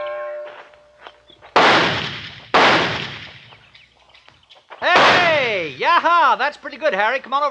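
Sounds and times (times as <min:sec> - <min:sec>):
new target pistol shots fired at a target on a tree: 0:01.5 - 0:03.7, 0:04.9 - 0:05.8
speech: 0:06.5 - 0:07.4.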